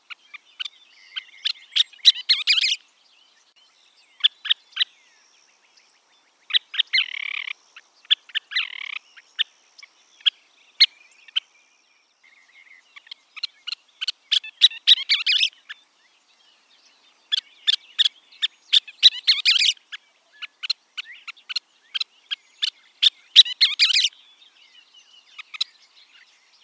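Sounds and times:
Scissor-tailed Flycatcher calls: 0.0 - 2.9, 3.6 - 26.6.

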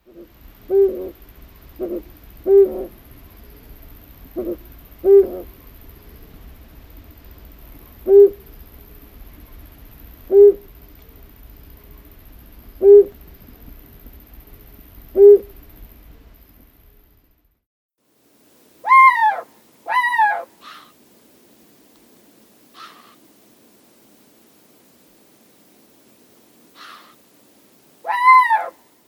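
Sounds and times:
Flammulated owl calling: 0.0 - 1.2, 1.8 - 6.2, 8.0 - 9.0, 10.3 - 10.7, 12.8 - 13.2, 15.1 - 15.6, 18.8 - 21.0, 22.7 - 23.3, 26.8 - 27.2, 28.0 - 29.0.

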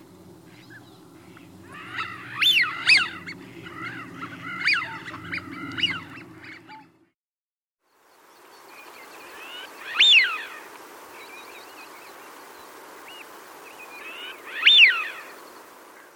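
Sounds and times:
background hiss: 0.0 - 6.8, 7.9 - 16.1
Eurasian wigeon whistled calls: 0.5 - 6.9, 9.4 - 10.5, 14.0 - 15.3.

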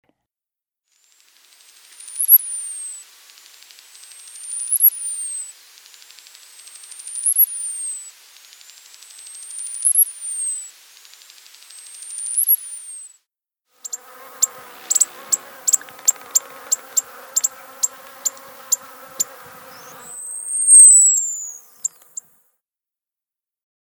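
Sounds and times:
Costa's hummingbird: 1.1 - 13.2, 13.8 - 22.4.

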